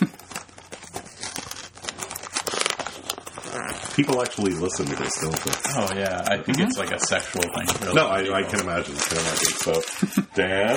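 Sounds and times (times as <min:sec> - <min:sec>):
packaging tearing and crinkling as a box is opened: 0:00.0 - 0:10.7
speech: 0:04.0 - 0:10.7.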